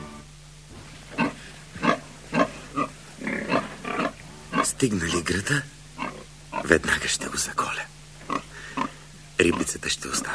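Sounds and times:
pig squealing in the middle of a road: 0:01.2 - 0:05.2, 0:06.0 - 0:06.8
pig grunting in the middle of a road: 0:01.2 - 0:05.4, 0:06.0 - 0:07.0, 0:08.2 - 0:10.3
speech: 0:04.8 - 0:05.8, 0:06.7 - 0:07.9, 0:09.4 - 0:10.3.

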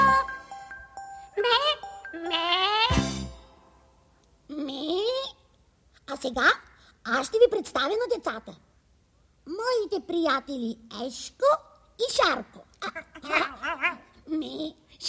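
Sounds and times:
soft tinkling bell-like tones: 0:00.1 - 0:03.9
young goat bleating: 0:01.5 - 0:03.0
speech: 0:07.1 - 0:08.7, 0:09.5 - 0:15.0.

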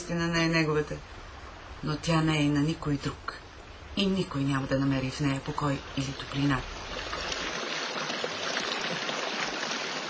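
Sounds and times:
speech: 0:00.1 - 0:03.4, 0:04.0 - 0:07.1
water pouring over a weir: 0:06.7 - 0:10.0.

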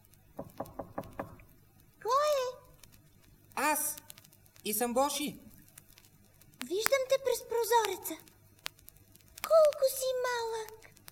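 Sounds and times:
knocking on a door: 0:00.4 - 0:01.4
speech: 0:04.7 - 0:05.5, 0:06.7 - 0:08.3, 0:09.5 - 0:10.9.

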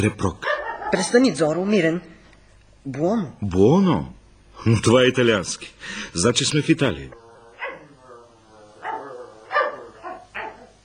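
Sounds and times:
speech: 0:00.0 - 0:02.1, 0:02.8 - 0:07.2
dog whiny yipping: 0:00.4 - 0:01.2, 0:07.6 - 0:07.9, 0:08.8 - 0:10.7
dog barking: 0:00.4 - 0:01.7, 0:07.6 - 0:10.8.

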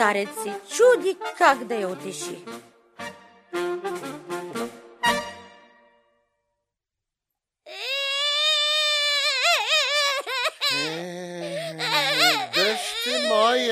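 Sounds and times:
speech: 0:00.0 - 0:02.7
princess crying with sobs and a wavering wail: 0:07.7 - 0:13.7.

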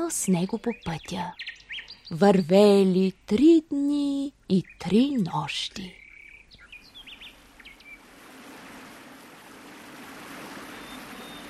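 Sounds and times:
birds chirping: 0:00.0 - 0:03.2, 0:04.3 - 0:11.4
speech: 0:00.1 - 0:06.0
waterfall foaming through a valley enclosed by rocky crags: 0:08.0 - 0:11.4.

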